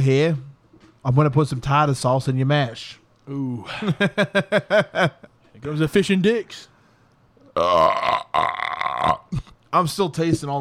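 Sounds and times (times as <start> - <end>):
speech: 0.0 - 6.7, 7.6 - 10.5
long loud croaking burps: 7.4 - 9.6.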